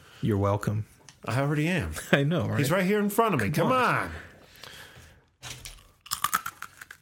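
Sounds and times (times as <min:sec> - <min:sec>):
speech: 0:00.2 - 0:04.3
fortune cookie being bitten and chewed: 0:05.6 - 0:07.0.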